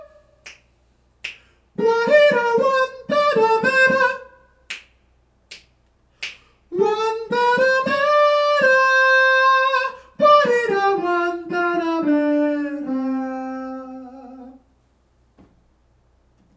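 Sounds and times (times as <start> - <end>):
full soprano section singing: 1.8 - 4.4, 6.7 - 14.6.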